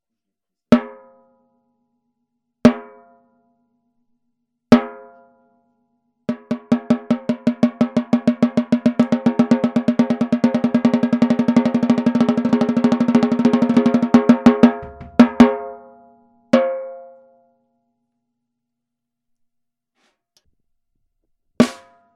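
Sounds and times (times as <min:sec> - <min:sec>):
brass 13X35 snare drum: 0:06.3 - 0:15.6, 0:21.6 - 0:22.0.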